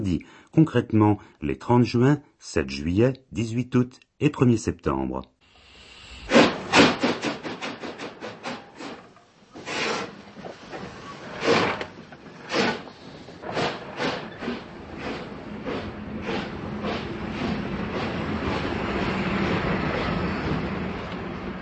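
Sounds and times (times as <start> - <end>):
speech: 0.0 - 5.3
historic Czech railways steam locomotive chuffing along the Sázava river: 6.2 - 21.6.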